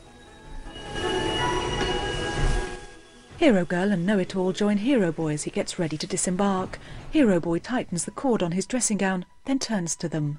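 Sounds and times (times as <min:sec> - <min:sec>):
steam train wheels high metallic squeal: 0:00.0 - 0:03.7
steam train rumbling as it slows to a stop on snowy ground: 0:00.0 - 0:07.4
speech: 0:03.4 - 0:10.3.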